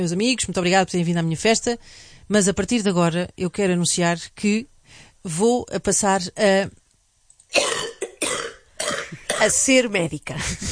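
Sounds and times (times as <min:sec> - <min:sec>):
speech: 0:00.0 - 0:06.8, 0:07.5 - 0:07.8, 0:09.4 - 0:10.7
person coughing harshly: 0:07.5 - 0:09.6.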